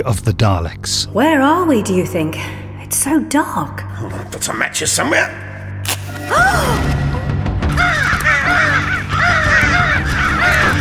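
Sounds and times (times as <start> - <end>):
speech: 0.0 - 5.5, 6.1 - 7.0
crows cawing harshly: 7.7 - 10.7.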